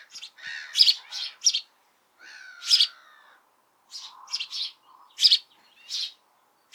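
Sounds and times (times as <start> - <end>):
house sparrow Passer domesticus chirping: 0.1 - 1.7, 2.6 - 2.9, 3.9 - 6.7.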